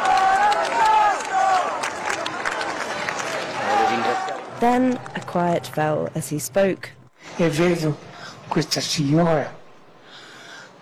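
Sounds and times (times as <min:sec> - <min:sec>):
people shouting: 0:00.0 - 0:01.8, 0:03.4 - 0:05.7
large open-air crowd cheering and chanting in unison: 0:00.0 - 0:10.1
speech: 0:04.6 - 0:09.6.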